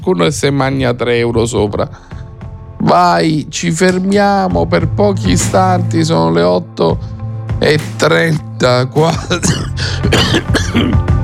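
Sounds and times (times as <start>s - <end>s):
speech: 0.0s - 2.2s, 2.8s - 11.1s
person coughing and clearing throat: 9.0s - 11.2s.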